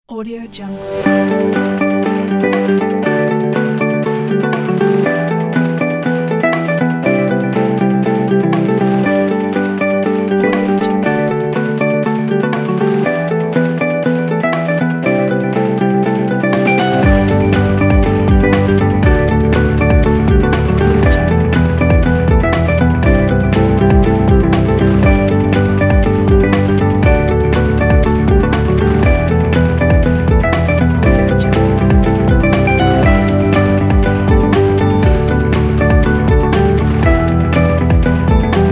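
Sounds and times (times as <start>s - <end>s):
motivational uplifting corporate music: 0.7s - 38.7s.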